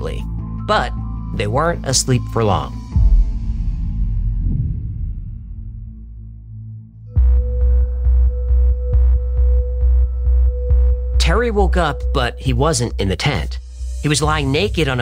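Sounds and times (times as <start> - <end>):
speech: 0.1 - 2.8, 11.3 - 15.0
deep rumbling drone: 2.9 - 11.2
sci-fi spaceship hum throbbing in pulses: 3.0 - 11.2.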